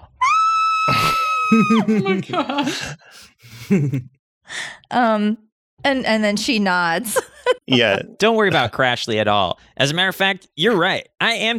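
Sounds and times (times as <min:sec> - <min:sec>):
person screaming muffled into own wrist: 0:00.2 - 0:01.9
laughter: 0:00.9 - 0:04.1, 0:07.2 - 0:08.8
speech: 0:01.5 - 0:11.5.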